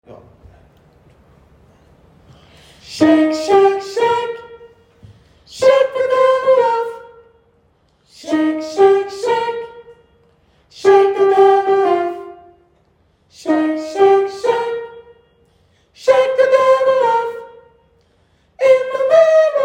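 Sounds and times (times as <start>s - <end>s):
soprano gospel singing: 2.5s - 17.9s, 18.5s - 19.6s.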